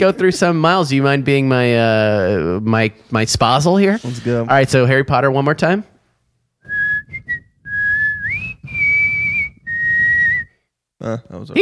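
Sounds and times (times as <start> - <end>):
speech: 0.0 - 5.9, 11.0 - 11.5
person whistling a melody: 6.6 - 10.6.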